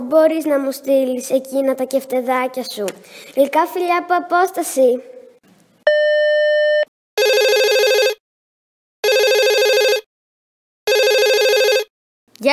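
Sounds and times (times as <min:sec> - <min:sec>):
speech: 0:00.0 - 0:05.2
telephone ringing: 0:05.9 - 0:08.2, 0:09.0 - 0:10.1, 0:10.9 - 0:11.9.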